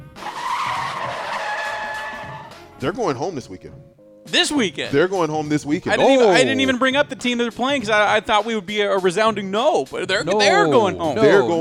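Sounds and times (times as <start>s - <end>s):
car brakes screeching in a long skid: 0.1s - 2.7s
speech: 2.8s - 11.5s.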